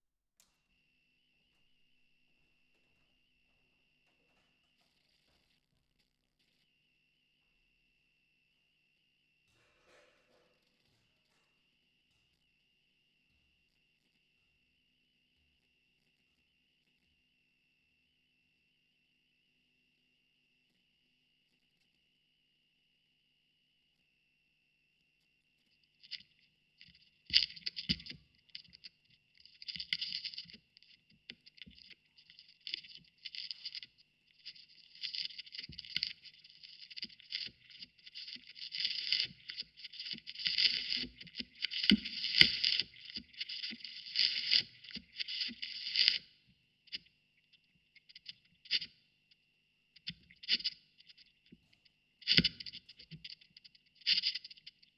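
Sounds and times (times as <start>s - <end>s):
vinyl record noise recorded with Rode NT4 microphone: 1.5s - 6.8s, 25.7s - 54.9s.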